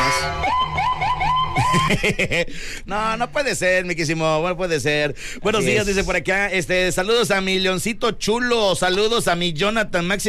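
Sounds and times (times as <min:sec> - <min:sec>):
police patrol car siren whooping: 0:00.0 - 0:02.0
laughter: 0:00.8 - 0:02.6
speech: 0:01.9 - 0:10.2.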